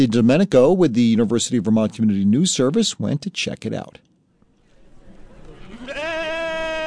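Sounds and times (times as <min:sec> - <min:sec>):
speech: 0:00.0 - 0:04.1
crowd murmur at a fairground: 0:04.6 - 0:06.8
sheep bleating at a fairground: 0:05.7 - 0:06.8.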